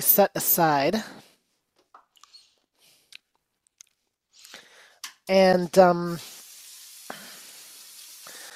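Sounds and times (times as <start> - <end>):
speech: 0.0 - 1.3, 5.3 - 6.3
sauce mixture poured over sizzling meat: 5.9 - 8.5
meat frying in a hot pan: 6.2 - 8.5.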